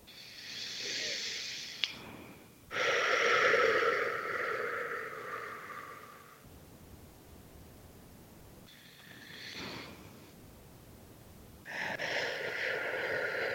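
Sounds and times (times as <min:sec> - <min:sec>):
person exhaling breathily during a breathing exercise: 0:00.0 - 0:06.4, 0:11.7 - 0:13.5
person inhaling slowly during a breathing exercise: 0:00.0 - 0:06.4, 0:08.7 - 0:10.4, 0:11.6 - 0:13.5.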